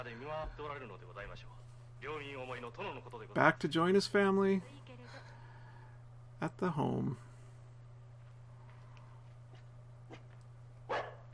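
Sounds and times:
speech: 0.0s - 5.3s, 6.4s - 7.3s
steady low electrical hum: 0.0s - 11.3s
dog barking: 10.9s - 11.3s.

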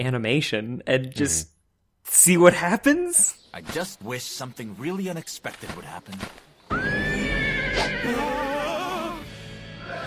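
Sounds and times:
speech: 0.0s - 6.5s, 7.8s - 8.5s
noise: 0.0s - 9.5s
horse neighing: 6.7s - 9.2s.

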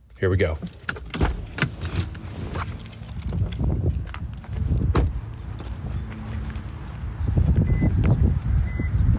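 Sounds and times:
low steady rumble of traffic: 0.0s - 9.1s
speech: 0.2s - 0.8s
keys jingling: 0.6s - 6.8s
clothing rustling: 1.3s - 6.9s
sharp car door thuds: 4.9s - 5.2s.

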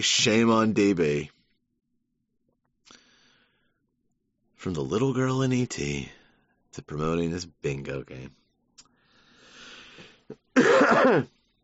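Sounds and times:
speech: 0.0s - 1.4s, 4.6s - 6.2s, 6.8s - 8.4s, 10.3s - 11.4s
raspy breath in: 2.9s - 3.8s, 8.9s - 10.3s
loud harsh drawn-out cough: 10.3s - 11.4s.

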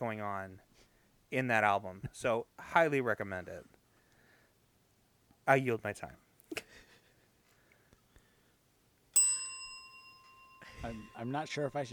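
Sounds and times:
speech: 0.0s - 3.8s, 5.5s - 6.2s, 10.8s - 11.9s
single bright bell strike ringing: 9.2s - 11.9s.

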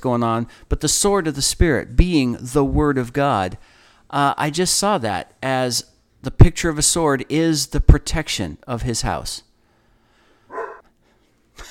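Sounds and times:
speech: 0.0s - 9.5s
dog barking: 10.5s - 10.8s.

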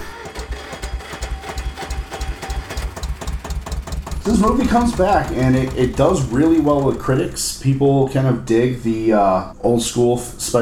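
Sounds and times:
old-timey tractor engine chugging: 0.0s - 7.6s
speech: 4.2s - 10.6s.

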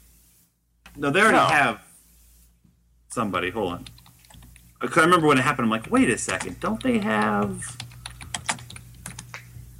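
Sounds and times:
speech: 1.0s - 1.9s, 3.1s - 4.0s, 4.8s - 7.9s
typing on a computer keyboard: 3.8s - 4.6s, 5.9s - 9.3s.

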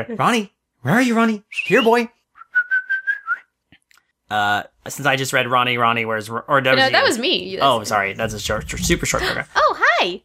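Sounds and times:
speech: 0.0s - 2.2s, 4.3s - 10.2s
person whistling a high pulsing note to call a pet pig: 1.5s - 3.5s.

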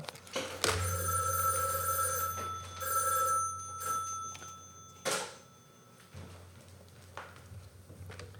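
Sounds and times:
mechanical bell of an old rotary telephone ringing: 0.7s - 6.2s.

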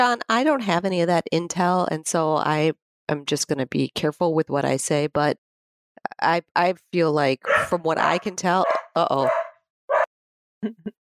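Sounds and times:
speech: 0.0s - 5.4s, 6.0s - 9.4s, 10.6s - 11.0s
dog barking: 7.5s - 7.8s, 8.6s - 10.1s.

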